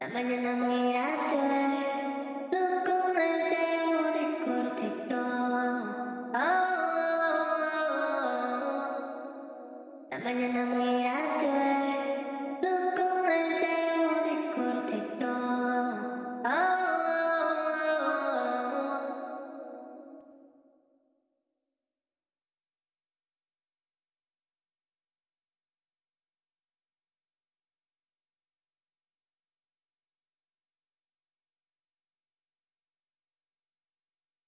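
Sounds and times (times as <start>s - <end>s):
Latin vocal melody in B minor: 0.0s - 20.1s.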